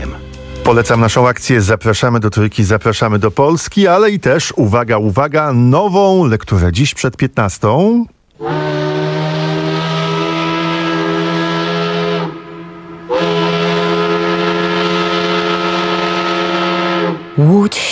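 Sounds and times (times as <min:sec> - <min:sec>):
speech: 0:00.7 - 0:08.8
loud factory whistle at dawn in Łódź: 0:08.4 - 0:17.9.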